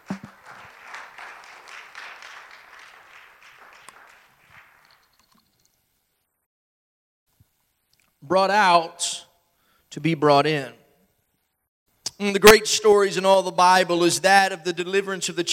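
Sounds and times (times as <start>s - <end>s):
congregation applauding: 0.0s - 5.3s
speech: 8.3s - 9.2s, 10.0s - 10.8s, 12.2s - 15.5s.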